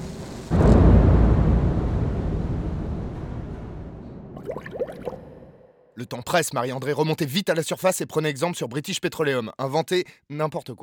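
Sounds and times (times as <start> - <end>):
heavy gas leak explosion with deep boom and low rumble: 0.0 - 5.6
speech: 6.0 - 10.8.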